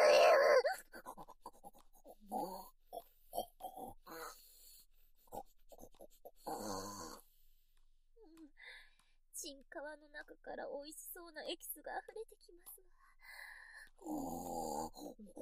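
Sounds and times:
vocal squeak: 0.0s - 1.6s
person imitating pig snorting through the nose: 0.0s - 4.5s, 5.2s - 7.2s, 14.0s - 15.3s
speech: 9.9s - 13.1s, 14.0s - 15.3s.

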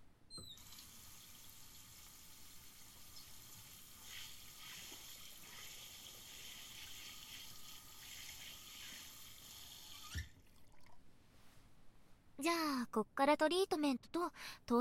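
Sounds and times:
water rinsing hair during a hair wash: 0.6s - 11.0s
faint rustling: 11.2s - 12.2s
speech: 12.4s - 14.7s.

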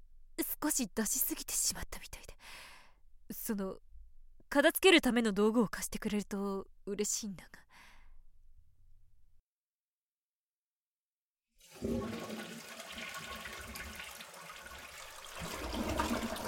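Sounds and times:
speech: 0.4s - 2.7s, 3.3s - 3.8s, 4.5s - 7.6s, 11.8s - 12.3s
toilet flushing: 11.6s - 16.4s.

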